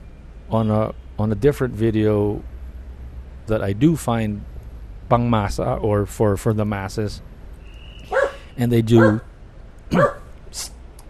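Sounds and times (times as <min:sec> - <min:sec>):
speech: 0:00.5 - 0:02.5, 0:03.5 - 0:04.5, 0:05.1 - 0:07.3, 0:08.0 - 0:09.3, 0:09.9 - 0:10.8
short breathy dog huff: 0:08.1 - 0:09.2
single sharp dog bark: 0:08.1 - 0:09.3, 0:09.9 - 0:10.3.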